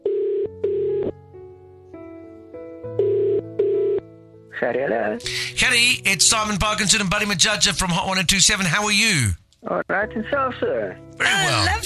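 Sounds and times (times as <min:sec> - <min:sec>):
telephone ringing tone heard from the caller's end as a call is placed: 0:00.0 - 0:01.1, 0:03.0 - 0:04.0
soft sustained musical background: 0:00.0 - 0:11.8
speech: 0:04.6 - 0:11.8.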